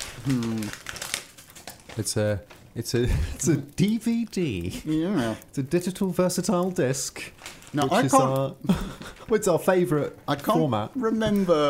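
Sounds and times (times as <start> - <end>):
shiny red reindeer-patterned wrapping paper being torn on a present: 0.0 - 5.0, 5.7 - 9.4
speech: 0.2 - 0.9, 2.0 - 11.6.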